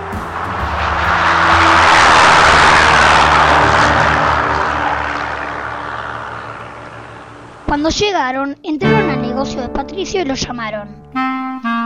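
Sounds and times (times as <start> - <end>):
airplane engine droning as the aircraft flies: 0.0 - 8.6
speech: 7.7 - 11.3.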